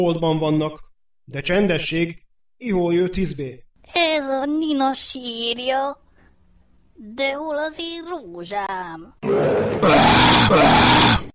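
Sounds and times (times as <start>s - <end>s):
speech: 0.0s - 6.0s, 7.0s - 11.3s
man voicing a lion's roar with harsh roaring growls: 9.2s - 11.3s.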